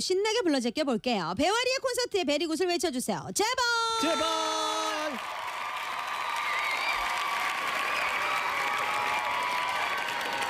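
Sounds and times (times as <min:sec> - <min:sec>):
speech: 0:00.0 - 0:05.2
large crowd clapping: 0:04.5 - 0:10.4.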